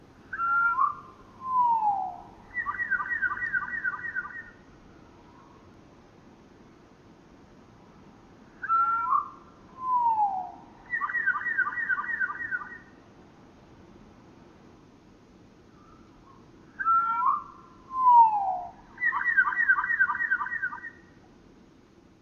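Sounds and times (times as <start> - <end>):
rufous towhee song slowed to one-third speed: 0.3 - 5.7, 8.5 - 13.0, 15.7 - 21.2.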